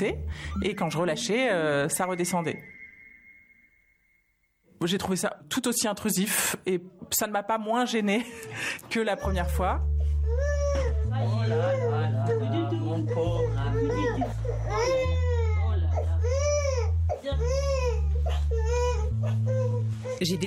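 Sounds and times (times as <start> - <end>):
baby crying: 0.0 - 2.7, 10.2 - 20.4
speech: 0.0 - 2.8, 4.8 - 10.5, 20.2 - 20.4.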